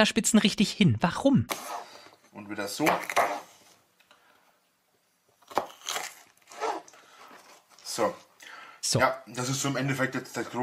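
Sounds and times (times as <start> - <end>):
speech: 0.0 - 1.8, 2.4 - 3.4, 8.0 - 10.6
knife cutting through a bell pepper: 1.5 - 1.8, 2.8 - 3.6, 5.4 - 6.8.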